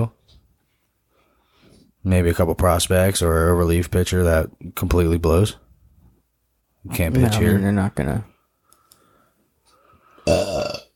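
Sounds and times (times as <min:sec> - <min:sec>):
speech: 0:02.0 - 0:05.6, 0:06.8 - 0:08.3, 0:10.3 - 0:10.7
burp: 0:10.2 - 0:10.9.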